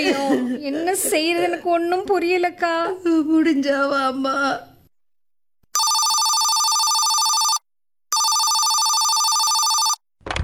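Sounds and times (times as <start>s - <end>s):
speech: 0.0s - 4.7s
telephone electronic bell ringing with an incoming call: 5.8s - 10.0s.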